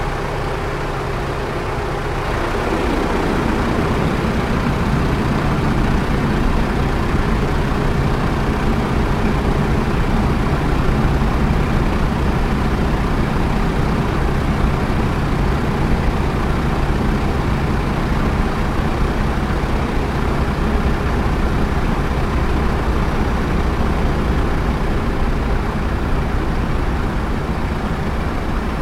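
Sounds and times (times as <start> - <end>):
T-28D Trojan aircraft landing heard from the interior: 0.2 - 28.7.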